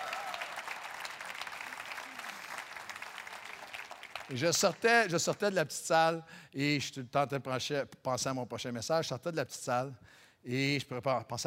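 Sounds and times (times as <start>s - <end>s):
sustained applause from a sizable audience: 0.0s - 4.4s
speech: 4.3s - 11.4s.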